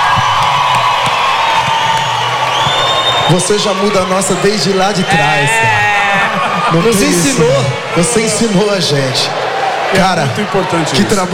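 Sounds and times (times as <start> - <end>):
audience whoops and shouts: 0.0 - 8.7
large audience applauding: 0.0 - 11.3
laughter: 3.3 - 11.3
speech: 3.3 - 11.3.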